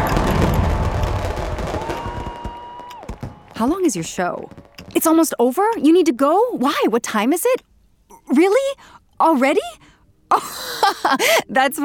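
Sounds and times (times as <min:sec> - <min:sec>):
deep booming rumble of fireworks: 0:00.0 - 0:02.6
fireworks barrage crackling and popping: 0:00.0 - 0:05.2
speech: 0:03.6 - 0:07.7, 0:08.3 - 0:11.8.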